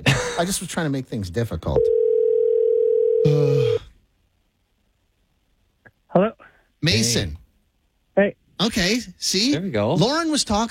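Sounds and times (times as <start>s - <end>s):
speech: 0.0s - 2.0s, 6.2s - 7.4s, 8.2s - 10.6s
telephone dial tone while placing a call: 1.9s - 3.3s.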